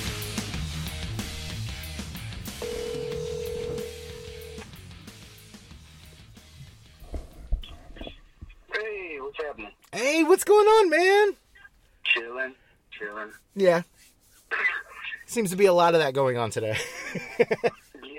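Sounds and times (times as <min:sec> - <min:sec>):
ringback tone of an outgoing phone call: 0:02.6 - 0:04.7
speech: 0:10.2 - 0:11.4, 0:13.2 - 0:13.9, 0:15.3 - 0:17.8.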